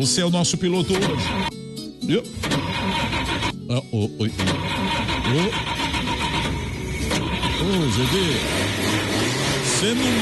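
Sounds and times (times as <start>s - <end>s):
speech: 0.0s - 5.9s, 7.6s - 10.1s
Chevette car engine cranking and starting: 0.9s - 1.6s, 2.4s - 3.6s, 4.3s - 10.1s.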